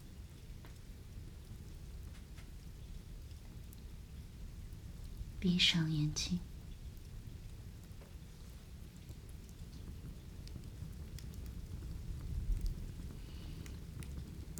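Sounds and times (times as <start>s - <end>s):
steady rain: 0.0s - 14.5s
speech: 5.4s - 6.5s.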